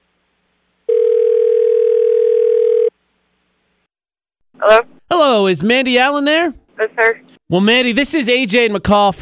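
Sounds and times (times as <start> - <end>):
steady electronic ring tone from a phone line while placing a call: 0.9 - 2.9
speech: 4.7 - 4.9, 5.5 - 9.2.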